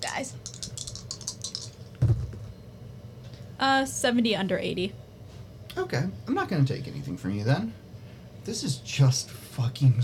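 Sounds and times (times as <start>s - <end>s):
speech: 0.1s - 0.5s, 3.6s - 5.0s, 5.8s - 7.8s, 8.4s - 10.0s
dice rattling and clattering across a hard surface: 0.4s - 1.9s
dice knocking as they settle: 0.4s - 2.4s.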